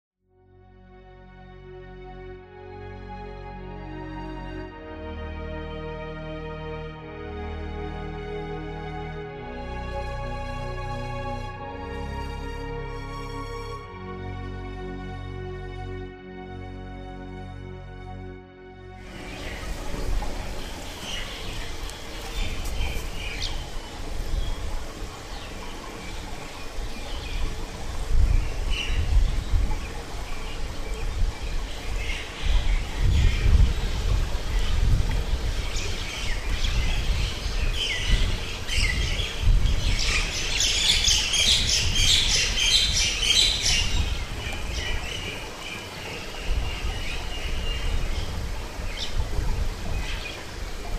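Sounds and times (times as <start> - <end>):
lotus pond soundscape: 0.3 - 50.9.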